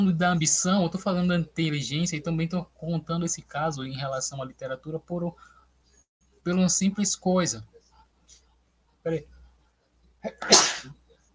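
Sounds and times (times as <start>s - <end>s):
speech: 0.0s - 5.6s, 6.4s - 7.7s, 9.0s - 9.3s, 10.2s - 11.0s
person sneezing: 10.3s - 11.0s.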